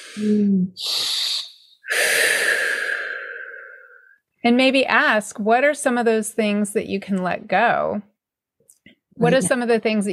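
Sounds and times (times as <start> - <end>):
deep breath: 0.0 - 4.2
speech: 0.2 - 1.0, 4.4 - 8.1, 9.2 - 10.1.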